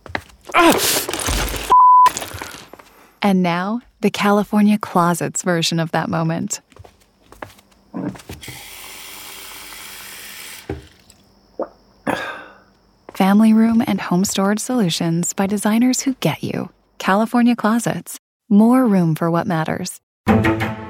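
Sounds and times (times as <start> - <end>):
toys clattering when stepped on: 0.4 - 2.9
adult groaning in pain after stepping on toys: 0.5 - 1.2
speech: 0.6 - 1.2, 3.2 - 6.7, 13.4 - 20.6
steady censor bleep tone: 1.7 - 2.1
tap water pouring into a glass: 8.4 - 11.2.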